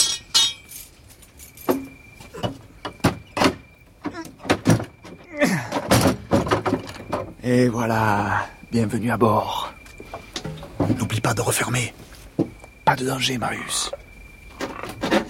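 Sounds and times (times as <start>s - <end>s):
locked door on a navy vessel being lifted off its hinges: 0.0s - 7.4s, 10.4s - 11.1s
speech: 7.5s - 9.7s, 10.9s - 12.0s, 12.9s - 14.0s.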